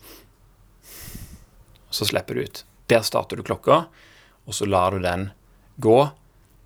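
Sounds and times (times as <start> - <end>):
breathy nasal inhale: 0.0 - 1.6, 3.9 - 4.4
short sniff through the nose: 0.0 - 1.6
speech: 2.0 - 6.2.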